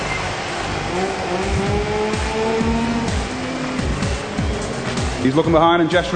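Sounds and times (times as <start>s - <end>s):
motorbike tires squealing on a wet track: 0.0s - 6.1s
racing motorbike engine screaming in a video game: 0.4s - 5.6s
speech: 5.2s - 6.1s.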